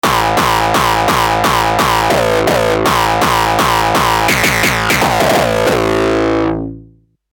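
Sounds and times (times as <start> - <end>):
synth kick drum: 0.0 - 6.8.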